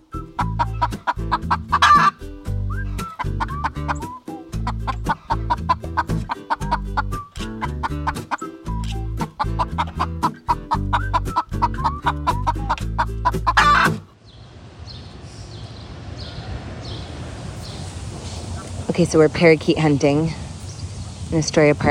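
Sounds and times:
rescued house rooster clucking: 0:00.4 - 0:02.2, 0:03.0 - 0:08.6, 0:09.2 - 0:14.2
speech: 0:19.0 - 0:20.4, 0:21.3 - 0:21.8.

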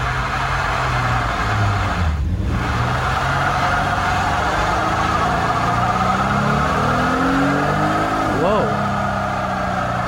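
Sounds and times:
car burnout with spinning tires: 0:00.0 - 0:10.0.

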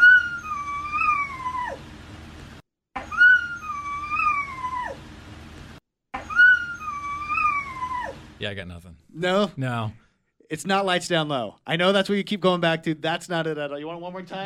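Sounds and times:
dog whining: 0:00.0 - 0:01.9, 0:03.0 - 0:05.0, 0:06.2 - 0:08.3
speech: 0:08.4 - 0:14.4.

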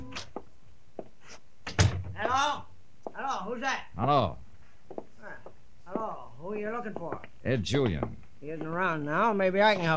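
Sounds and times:
office door opening as someone walks in: 0:01.7 - 0:02.2
speech: 0:03.6 - 0:04.4, 0:06.5 - 0:09.9.

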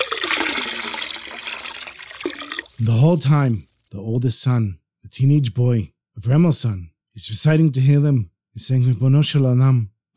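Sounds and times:
river water poured from buckets into empty barrels: 0:00.0 - 0:04.0
speech: 0:02.8 - 0:10.1.

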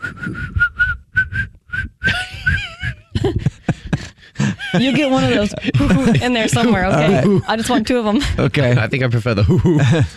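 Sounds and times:
person whistling: 0:00.0 - 0:03.0
laughter: 0:02.1 - 0:10.1
speech: 0:04.7 - 0:10.1.

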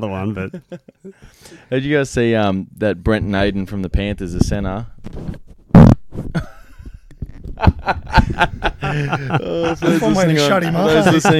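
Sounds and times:
speech: 0:00.0 - 0:05.5, 0:07.9 - 0:11.3
fart blasted directly into a microphone: 0:05.7 - 0:07.8
people snickering and chuckling: 0:06.3 - 0:07.0, 0:07.6 - 0:11.3.

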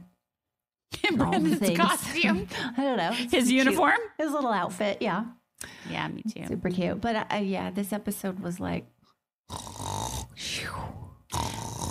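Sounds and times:
speech: 0:01.1 - 0:09.7
loud rattling snoring: 0:09.5 - 0:11.8.

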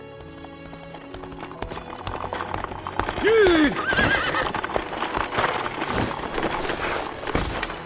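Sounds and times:
horse hooves clip-clopping on hard ground: 0:00.0 - 0:07.8
horse letting out a loud falling whinny: 0:02.8 - 0:05.5.

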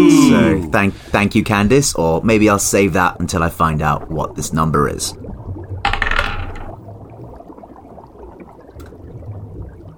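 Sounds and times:
speech: 0:00.0 - 0:05.4
dice rolling across a hard tabletop: 0:05.9 - 0:06.7.

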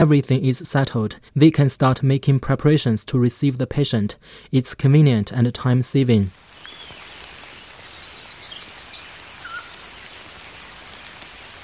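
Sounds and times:
speech: 0:00.0 - 0:06.4
rain falling on a July afternoon: 0:06.3 - 0:11.6
faint bird chirps: 0:06.5 - 0:10.9.

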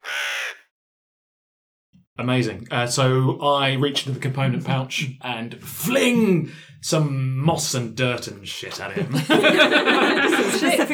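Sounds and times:
human voice imitating a crow's caw: 0:00.0 - 0:00.7
speech: 0:02.2 - 0:10.9
laughter: 0:03.8 - 0:06.6, 0:08.5 - 0:10.9.

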